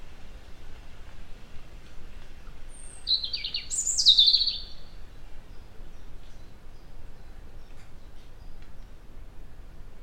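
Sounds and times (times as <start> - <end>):
quiet background hiss: 0.0 - 10.0
European robin Erithacus rubecula singing: 2.7 - 9.0.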